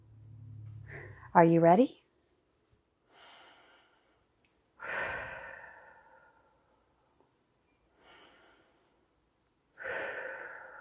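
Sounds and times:
deep breaths in through nose and out through mouth: 0:00.7 - 0:01.3, 0:03.0 - 0:09.2, 0:09.8 - 0:10.7
speech: 0:01.3 - 0:02.0.

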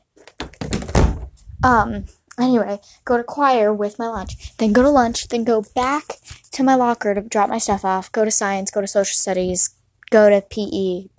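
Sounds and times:
bedroom door being closed: 0:00.4 - 0:01.4
speech: 0:01.6 - 0:11.1.

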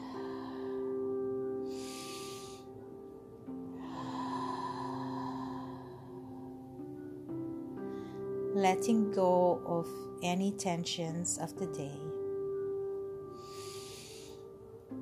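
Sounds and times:
slow breathing in and out during a guided relaxation: 0:00.0 - 0:08.5, 0:13.2 - 0:14.7
quiet drone of sustained tones: 0:00.0 - 0:09.6, 0:11.7 - 0:14.9
speech: 0:08.6 - 0:12.1.

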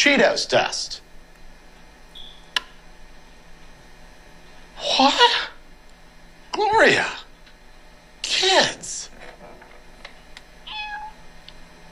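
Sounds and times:
speech: 0:00.0 - 0:01.0, 0:04.8 - 0:05.6, 0:06.6 - 0:07.2, 0:08.2 - 0:09.1
cat meowing: 0:10.7 - 0:11.2.

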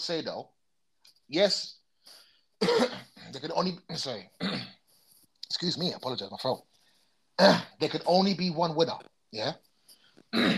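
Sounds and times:
speech: 0:00.0 - 0:00.6, 0:01.3 - 0:04.8, 0:05.5 - 0:06.7, 0:07.4 - 0:10.5
coughing: 0:02.6 - 0:03.4, 0:04.1 - 0:05.0, 0:07.4 - 0:07.8, 0:10.3 - 0:10.5
throat clearing: 0:04.4 - 0:04.8, 0:10.3 - 0:10.5.

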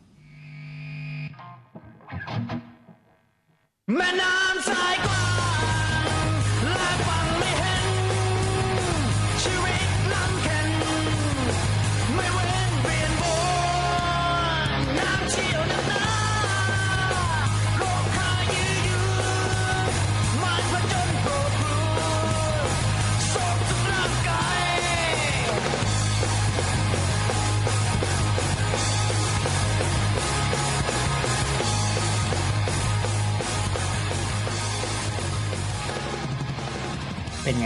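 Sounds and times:
heavily distorted guitars: 0:00.0 - 0:37.6
band playing a cover song: 0:01.4 - 0:03.0, 0:04.5 - 0:37.6
speech: 0:03.9 - 0:05.2.

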